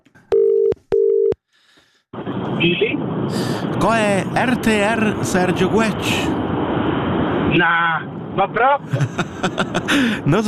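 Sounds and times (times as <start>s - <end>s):
telephone tones: 0.3s - 1.4s
speech: 2.6s - 6.4s, 7.5s - 10.4s
laughter: 8.8s - 10.3s.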